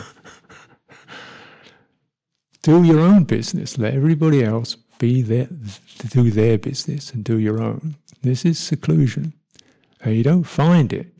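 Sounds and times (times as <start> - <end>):
person breathing in and out: 0.0 - 2.0
speech: 2.6 - 9.4, 10.0 - 11.1.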